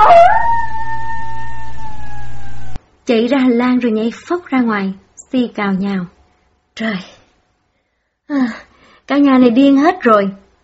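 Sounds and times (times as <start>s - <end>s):
frightened dog barking with a crying howl: 0.0s - 2.8s
speech: 3.1s - 6.2s, 6.8s - 7.2s, 8.3s - 10.4s.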